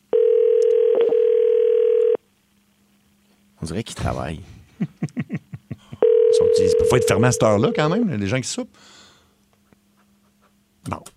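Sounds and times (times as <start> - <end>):
telephone ringback tone on an outgoing call: 0.1 - 2.2, 6.0 - 7.5
speech: 3.6 - 5.0, 6.6 - 9.0, 10.9 - 11.1
laughter: 4.7 - 6.0.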